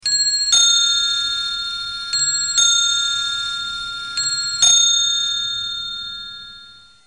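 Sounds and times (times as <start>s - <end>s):
bell ringing: 0.0s - 7.0s.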